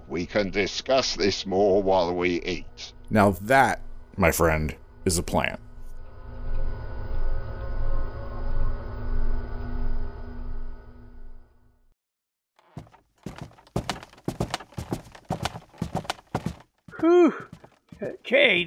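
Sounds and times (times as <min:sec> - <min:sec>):
speech: 0:00.1 - 0:05.6, 0:18.0 - 0:18.6
footsteps climbing the stairs up to a safe house office: 0:12.6 - 0:18.6.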